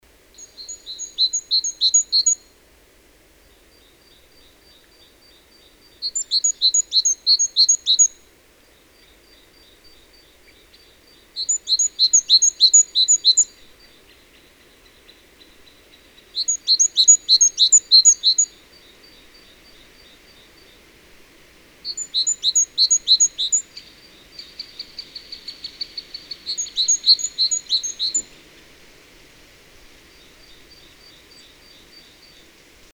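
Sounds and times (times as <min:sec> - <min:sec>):
great tit singing: 0:00.4 - 0:02.4, 0:03.6 - 0:21.1, 0:21.7 - 0:28.7.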